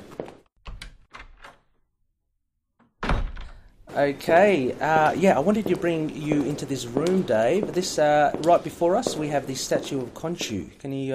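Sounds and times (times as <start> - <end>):
door creaking and rattling open: 0.6 - 1.8, 2.8 - 3.8
door shutting with a solid thud: 2.8 - 3.7
speech: 4.0 - 11.1.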